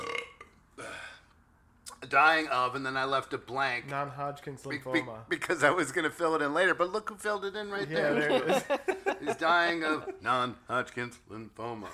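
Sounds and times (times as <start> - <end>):
drawn-out burp with throaty hiccup-like bursts: 0.0 - 1.2
speech: 2.0 - 11.9
laughter: 8.0 - 10.2.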